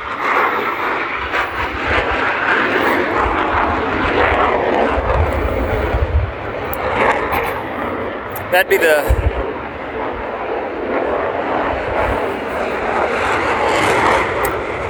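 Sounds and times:
F-18 fighter jets flying overhead with loud engine roar: 0.0s - 14.8s
speech: 8.5s - 9.2s.

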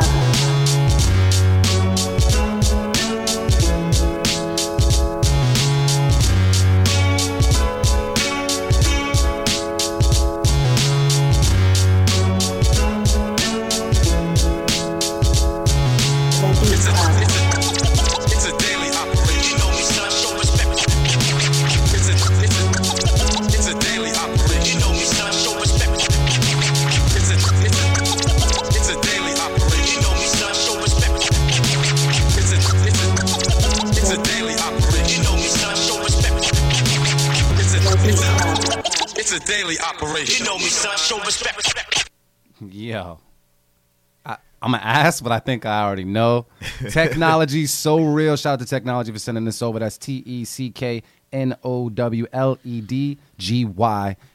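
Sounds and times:
hip-hop instrumental beat with heavy repeating bass pattern: 0.0s - 42.1s
laughter: 37.8s - 40.6s, 46.6s - 47.5s
speech: 44.8s - 54.3s.

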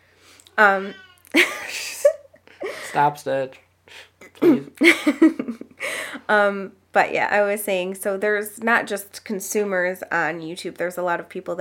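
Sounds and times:
pet cat meowing: 0.6s - 1.3s
speech: 0.6s - 1.6s, 2.9s - 5.6s, 6.3s - 11.5s.

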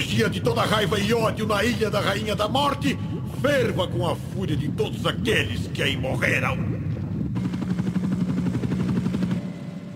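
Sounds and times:
speech: 0.1s - 6.8s
helicopter rotor thumping: 7.3s - 9.9s.

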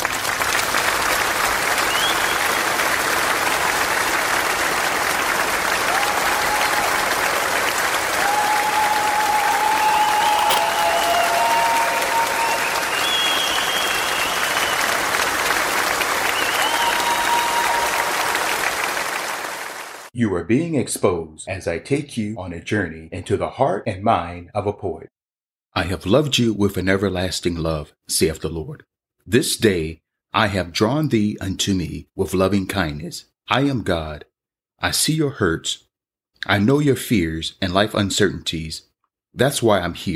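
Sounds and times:
audience applause: 0.0s - 20.1s
cheers: 1.7s - 3.0s, 5.6s - 20.1s
whistles: 1.8s - 2.8s, 8.2s - 15.2s, 16.2s - 18.2s
speech: 20.5s - 25.2s, 25.8s - 35.8s, 36.4s - 40.1s.

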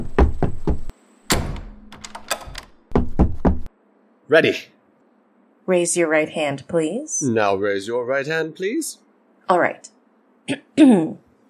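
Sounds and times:
dull knocking thumps: 0.0s - 0.9s, 2.9s - 3.7s
door thudding shut with a heavy close: 0.0s - 3.7s
small metallic clicks and rattles of door lock: 1.3s - 2.8s
speech: 4.3s - 4.8s, 5.7s - 11.2s.

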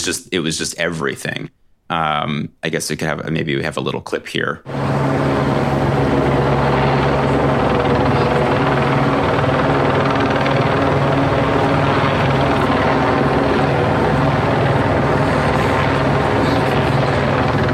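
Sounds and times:
speech: 0.0s - 5.4s
police and news helicopters circling overhead at Echo Park Lake: 4.7s - 17.7s.

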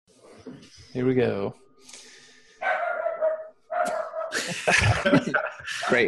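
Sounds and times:
speech: 0.4s - 1.6s, 4.5s - 6.0s
dog barking with drawn-out whining barks: 2.6s - 4.5s, 5.8s - 6.0s
laughter: 4.3s - 6.0s.

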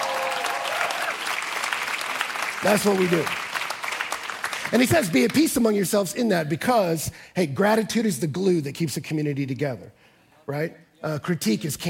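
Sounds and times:
large audience cheering: 0.0s - 4.9s
large audience applauding: 0.0s - 5.5s
speech: 2.6s - 3.4s, 4.7s - 11.8s.

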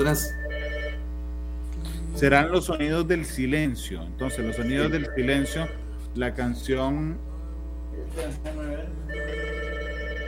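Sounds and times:
speech: 0.0s - 0.4s, 2.2s - 7.3s, 8.2s - 9.3s
telephone ringing: 0.0s - 1.1s, 4.2s - 5.9s, 9.1s - 10.2s
constant low hum: 0.0s - 10.2s.

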